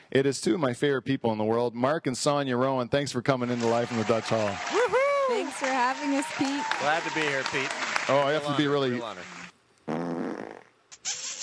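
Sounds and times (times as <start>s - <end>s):
speech: 0.1s - 9.4s
loud buzzy fart: 9.8s - 11.4s.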